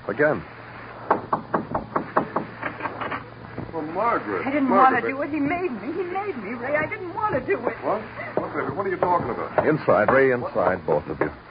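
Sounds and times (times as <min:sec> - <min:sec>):
speech: 0:00.1 - 0:00.5, 0:03.8 - 0:11.5
sharp knocks on a door: 0:01.1 - 0:02.6, 0:06.7 - 0:07.7, 0:08.4 - 0:11.4.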